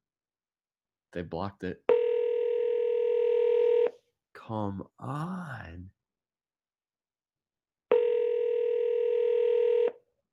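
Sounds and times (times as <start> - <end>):
speech: 1.2 - 1.9, 4.5 - 6.0
telephone ring tone on a call to an MCI number: 1.9 - 3.9, 7.9 - 10.0.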